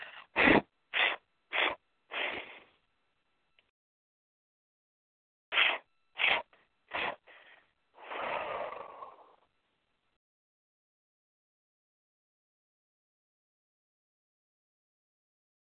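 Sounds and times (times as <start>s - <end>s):
breath blown out in puffs: 0.0s - 2.7s, 5.5s - 9.3s.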